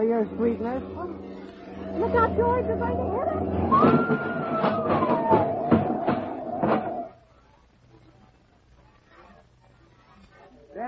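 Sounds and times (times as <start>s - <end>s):
speech: 0.0s - 5.4s
rhythmic clattering bursts: 0.0s - 7.2s
ambulance siren winding down in a falling wail: 1.8s - 7.1s.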